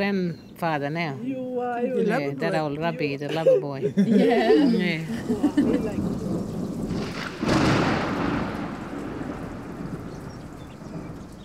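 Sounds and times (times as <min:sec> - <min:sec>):
speech: 0:00.0 - 0:06.3
laughter: 0:01.4 - 0:06.3
heavy thunderstorm rain hissing in northern Australia: 0:04.0 - 0:11.4
loud thunderclap rumbling in northern Australia: 0:04.7 - 0:11.4.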